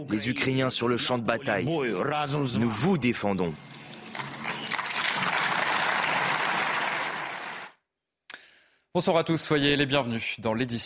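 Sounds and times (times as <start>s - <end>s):
speech: 0.0s - 3.8s, 9.0s - 10.8s
large crowd applauding in parliament: 3.8s - 7.8s.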